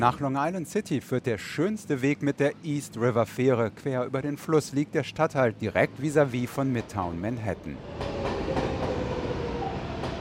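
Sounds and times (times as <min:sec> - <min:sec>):
speech: 0:00.0 - 0:08.1
New York subway train carrying commuters rumbling: 0:03.2 - 0:10.1.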